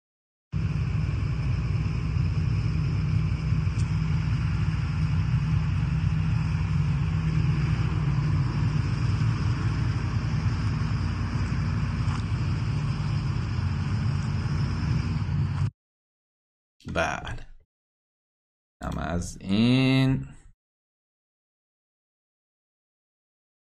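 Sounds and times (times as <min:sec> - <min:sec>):
truck engine rumbling at the Shiraz refinery in Iran during a truck drivers' strike: 0:00.6 - 0:15.7
speech: 0:16.9 - 0:17.5, 0:18.8 - 0:20.4.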